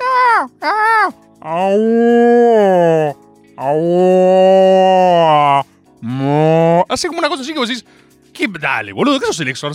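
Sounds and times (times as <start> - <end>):
person imitating a cat's deep moo-like yowl: 0.0 - 6.8
speech: 0.6 - 2.2, 7.0 - 9.7.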